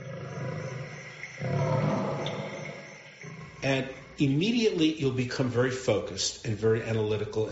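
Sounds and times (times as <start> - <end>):
lion roaring with a deep rumbling growl: 0.0 - 4.8
speech: 3.6 - 7.5.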